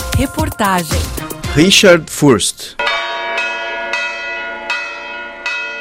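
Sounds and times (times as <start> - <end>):
speech: 0.2 - 2.9
bells ringing: 2.8 - 5.7.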